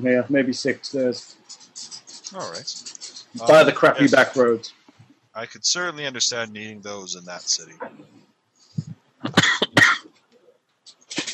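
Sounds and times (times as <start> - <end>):
speech: 0.0 - 4.8, 5.4 - 8.2
harsh coughing: 9.3 - 10.1.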